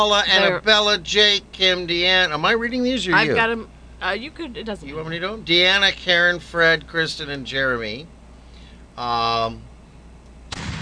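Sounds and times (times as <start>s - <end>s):
brief buzzy held tone: 0.0s - 5.9s
speech: 0.0s - 8.2s, 9.0s - 9.7s
loud cannon blast with rumbling boom: 10.5s - 10.8s.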